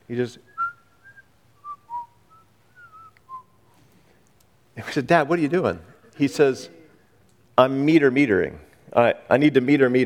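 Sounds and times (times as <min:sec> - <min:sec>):
speech: 0:00.1 - 0:00.6, 0:04.8 - 0:06.8, 0:07.6 - 0:10.0
person whistling tuneless random notes: 0:00.5 - 0:03.6.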